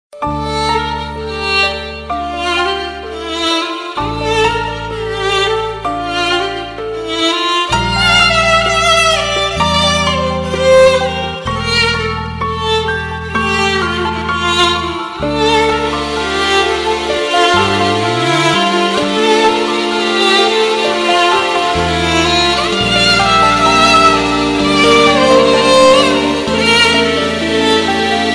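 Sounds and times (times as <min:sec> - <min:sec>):
sad violin melody: 0:00.1 - 0:28.3.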